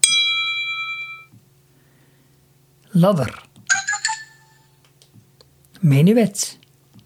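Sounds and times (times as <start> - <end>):
bright clock-like chime notification tone: 0.0 - 1.3
speech: 3.0 - 3.4, 5.8 - 6.6.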